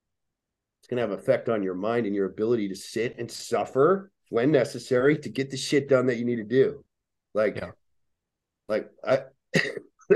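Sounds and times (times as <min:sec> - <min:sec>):
speech: 0:00.8 - 0:07.8, 0:08.7 - 0:10.1
person coughing: 0:09.5 - 0:10.1
throat clearing: 0:09.5 - 0:10.1.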